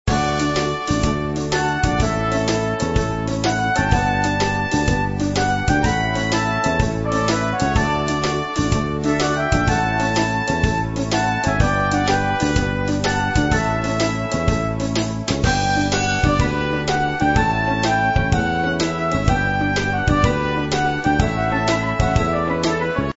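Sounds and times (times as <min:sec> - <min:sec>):
day theme music: 0:00.1 - 0:23.1.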